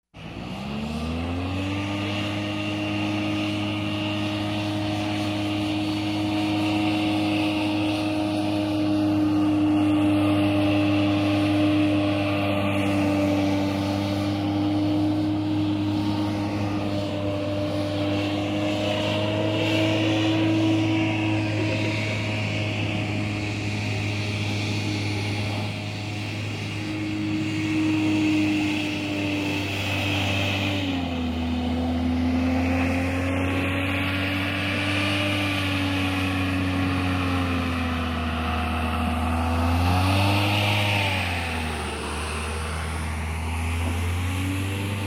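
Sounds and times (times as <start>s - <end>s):
boat driving around: 0.2s - 45.0s.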